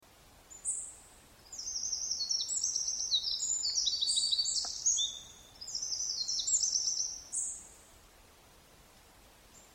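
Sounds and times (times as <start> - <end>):
Eurasian wren Troglodytes troglodytes singing: 0.5 - 7.9.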